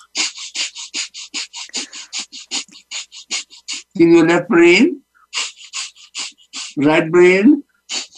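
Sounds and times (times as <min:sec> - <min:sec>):
man doing rapid forceful yogic fire breathing through one nostril: 0:00.0 - 0:04.0, 0:05.1 - 0:07.1, 0:07.7 - 0:08.1
speech: 0:04.0 - 0:05.0, 0:06.8 - 0:07.6.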